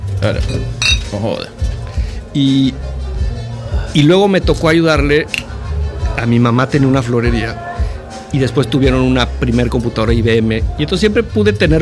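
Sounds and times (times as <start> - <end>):
speech: 0.2 - 2.9, 3.9 - 5.4, 6.2 - 7.7, 8.3 - 11.8
glasses clinking in a toast: 0.4 - 1.2
table clatter: 0.5 - 1.2.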